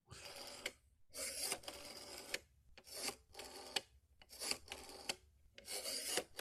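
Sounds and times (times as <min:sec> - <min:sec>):
rotary phone dial being turned and whirring back: 0:00.2 - 0:06.3.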